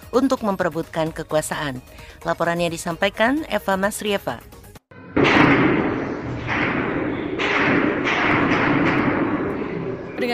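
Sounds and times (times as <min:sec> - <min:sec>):
speech: 0:00.2 - 0:04.6
bomb explosions during fighting around Khartoum Sudan: 0:04.9 - 0:10.3
gunfire during fighting around Khartoum Sudan: 0:05.2 - 0:10.2.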